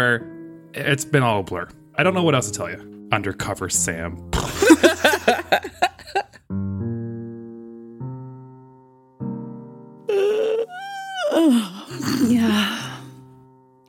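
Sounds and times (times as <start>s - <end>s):
speech: 0.0s - 5.7s
laughter: 4.6s - 6.4s
long drawn-out yawn sagging into a breathy groan: 10.1s - 13.2s.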